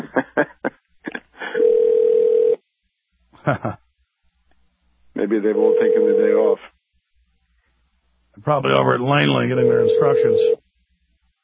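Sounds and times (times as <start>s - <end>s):
laughter: 0.0s - 1.6s, 3.4s - 3.8s
speech: 0.4s - 0.6s, 3.5s - 3.8s, 5.3s - 6.7s, 8.5s - 10.6s
telephone ringback tone over the phone line: 1.6s - 2.6s, 5.6s - 6.6s, 9.4s - 10.6s.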